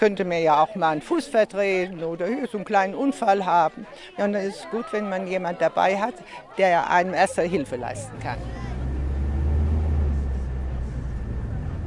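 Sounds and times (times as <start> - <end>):
speech: 0.0 - 8.7
bus road noise: 7.3 - 11.8
bus engine rumbling in the Sacred Valley of the Incas: 7.4 - 11.8.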